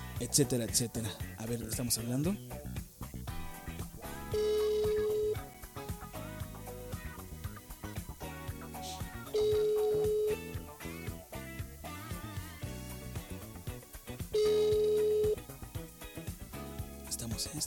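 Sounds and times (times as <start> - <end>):
speech: 0.2 - 2.8
telephone ringing with an electronic tone: 4.0 - 5.6, 9.2 - 10.6, 14.4 - 15.5.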